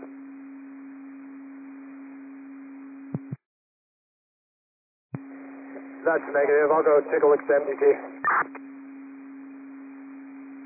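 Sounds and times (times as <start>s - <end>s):
radio hiss: 5.4s - 8.6s
speech: 6.0s - 8.7s.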